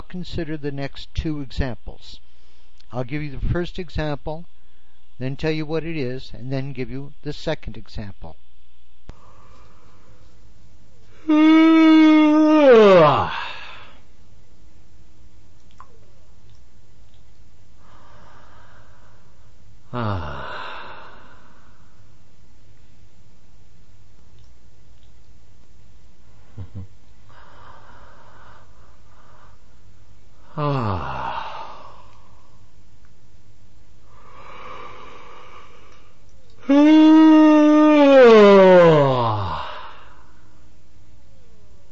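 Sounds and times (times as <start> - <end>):
speech: 0.1 - 2.3, 2.9 - 4.5, 5.2 - 8.4, 11.2 - 11.8, 12.4 - 13.6, 19.9 - 20.5
soft breaths: 2.2 - 2.8, 9.1 - 11.3, 17.7 - 22.3, 26.2 - 32.8, 34.0 - 36.7
voiced exhale: 9.1 - 10.2, 11.1 - 14.1, 17.8 - 22.1, 27.3 - 29.8, 30.4 - 32.7, 34.1 - 36.9, 38.8 - 40.6
person yawning: 11.2 - 14.0, 19.9 - 21.5, 30.4 - 32.3, 36.6 - 40.3.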